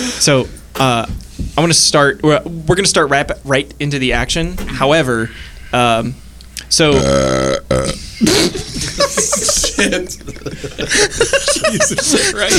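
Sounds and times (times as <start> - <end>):
speech: 0.1 - 12.5
loud low rasping burp into a microphone without a pop filter: 6.9 - 8.2
people chuckling: 6.9 - 12.5.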